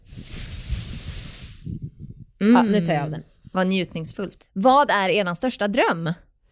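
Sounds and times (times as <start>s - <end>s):
tinsel Christmas garland rustling: 0.0s - 1.9s
speech: 2.4s - 6.3s.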